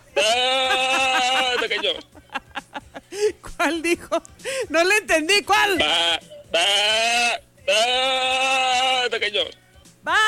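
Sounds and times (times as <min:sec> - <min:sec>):
laughter: 0:00.0 - 0:03.4
speech: 0:01.7 - 0:02.3, 0:03.2 - 0:10.2
sheep bleating: 0:05.8 - 0:09.2.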